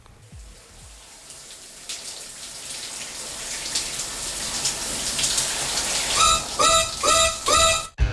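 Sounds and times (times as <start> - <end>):
water spraying from a shower: 0.2 - 8.0
squeaky tap turning: 6.1 - 8.0.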